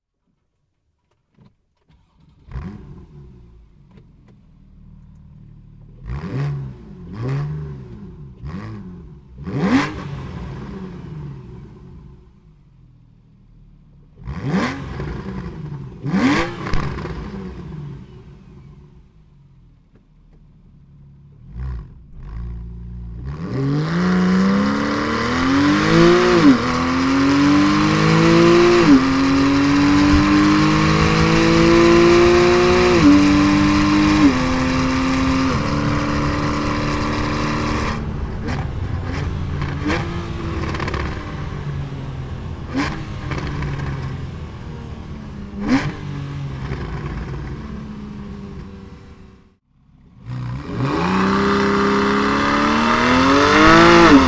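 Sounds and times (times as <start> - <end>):
Porsche 911 Carrera S: 0.0 - 54.2.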